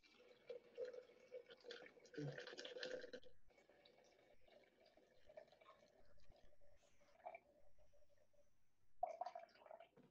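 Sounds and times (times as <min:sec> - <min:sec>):
water pouring from a kettle into a vessel: 0:00.0 - 0:07.8, 0:09.0 - 0:10.1.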